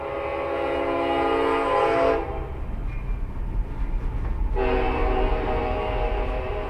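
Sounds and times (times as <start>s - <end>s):
Union Pacific train horn blasts: 0.0s - 2.6s, 4.5s - 6.6s
Union Pacific Railroad main line train rumbling past a grain cooperative in Hayes Kansas: 0.0s - 6.6s.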